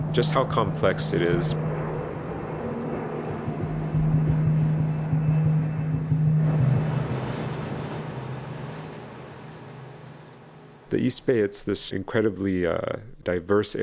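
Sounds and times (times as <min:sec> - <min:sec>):
propeller airplane droning overhead above a natural area: 0:00.0 - 0:11.0
speech: 0:00.2 - 0:01.7, 0:10.9 - 0:13.8.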